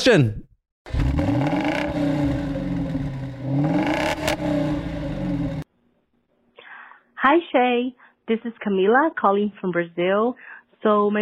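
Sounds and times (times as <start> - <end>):
speech: 0.0 - 1.5, 7.2 - 11.1
car engine revving hard: 0.9 - 5.6.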